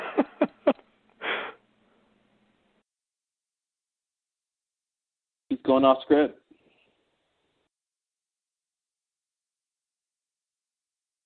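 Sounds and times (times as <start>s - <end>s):
laughter: 0.0s - 0.8s
person gasping for air: 1.2s - 1.6s
rasping breath out: 1.2s - 1.6s
speech: 5.6s - 6.4s.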